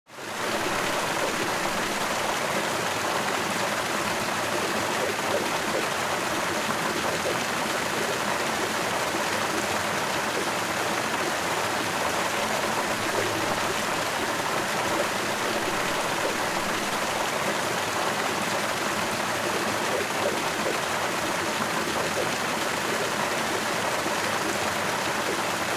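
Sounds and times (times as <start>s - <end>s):
water fountain: 0.1s - 25.7s.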